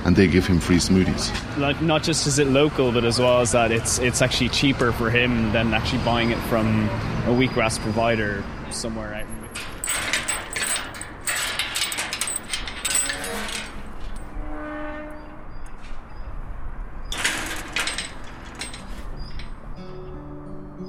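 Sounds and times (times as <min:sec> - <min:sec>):
speech: 0:00.1 - 0:09.7
gate creaking open: 0:09.4 - 0:14.4, 0:17.1 - 0:19.6
metallic clanks and rattling of a gate: 0:09.5 - 0:14.4, 0:17.1 - 0:19.7.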